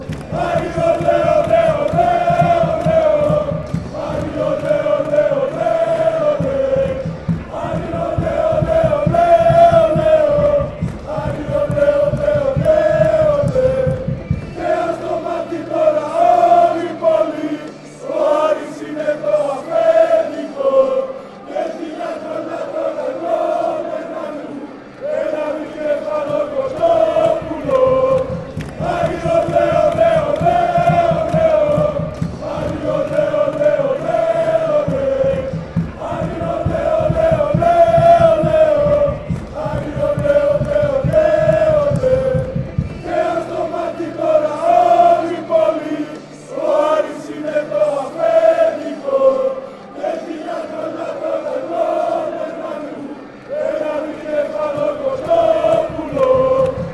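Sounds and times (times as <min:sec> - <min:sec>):
people chanting: 0:00.0 - 0:56.9.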